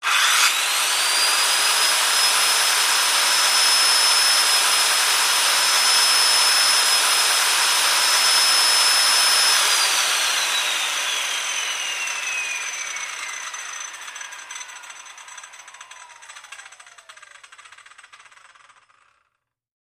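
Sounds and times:
circular saw running: 0.0 - 19.3.

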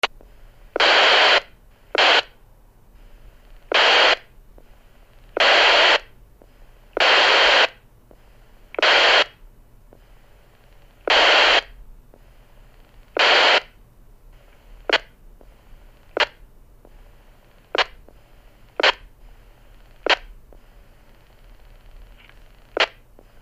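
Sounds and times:
walkie-talkie static: 0.8 - 2.4, 3.6 - 4.3, 5.3 - 6.2, 6.9 - 7.8, 8.7 - 9.4, 10.6 - 11.8, 12.7 - 13.8, 14.4 - 23.4.

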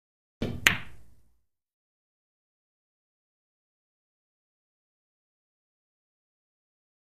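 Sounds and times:
billiard balls hitting: 0.4 - 1.2.

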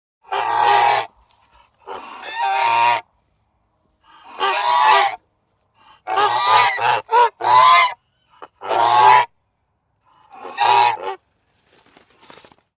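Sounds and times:
goose honking strangely: 0.3 - 3.0, 4.1 - 5.2, 5.8 - 9.3, 10.2 - 11.2.

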